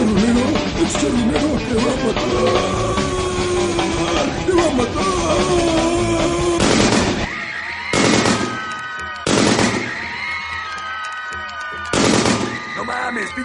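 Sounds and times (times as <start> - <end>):
music playing in a bar: 0.0 - 13.4
speech: 1.0 - 2.8
gunshots fired in a bar: 6.6 - 10.0, 11.9 - 12.7.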